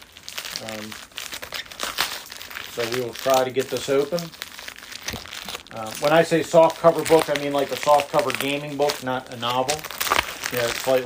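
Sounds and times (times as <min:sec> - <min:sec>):
plastic bag package crinkling: 0:00.0 - 0:11.0
tape being pulled off a plastic bag package: 0:00.0 - 0:11.0
speech: 0:00.6 - 0:01.1, 0:02.8 - 0:04.4, 0:05.7 - 0:11.0.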